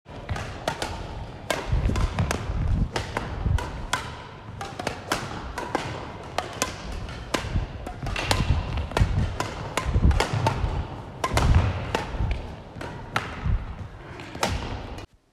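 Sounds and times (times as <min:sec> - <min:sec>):
ball sound: 0:00.1 - 0:15.1.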